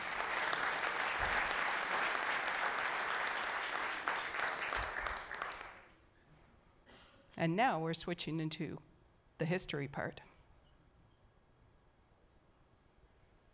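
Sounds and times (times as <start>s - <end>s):
audience applause: 0.0s - 5.9s
speech: 7.4s - 10.3s.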